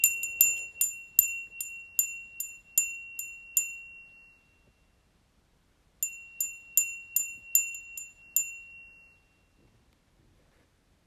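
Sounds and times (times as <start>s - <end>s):
wind bell ringing: 0.0s - 4.9s, 6.0s - 9.6s.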